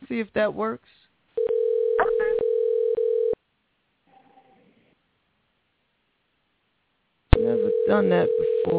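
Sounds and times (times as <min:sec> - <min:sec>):
speech: 0:00.1 - 0:01.0, 0:07.9 - 0:08.7
telephone dial tone while a call is placed: 0:01.4 - 0:03.4, 0:07.4 - 0:08.7.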